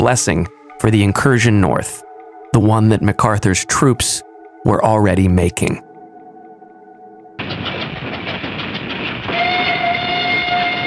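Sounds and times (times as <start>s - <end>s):
speech: 0.0s - 5.9s
train rolling along the rails with rumble and rattle: 7.4s - 10.8s
train whistle or horn tone: 9.2s - 10.8s.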